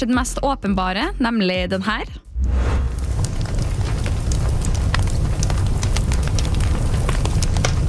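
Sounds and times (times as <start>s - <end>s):
speech: 0.0s - 2.8s
fire crackling in a fireplace: 2.4s - 7.8s.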